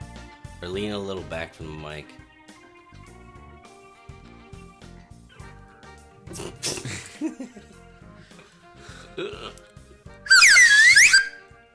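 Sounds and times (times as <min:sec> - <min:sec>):
speech: 0:00.6 - 0:02.3
laughter: 0:06.3 - 0:07.8
cheap slide whistle: 0:10.3 - 0:11.6.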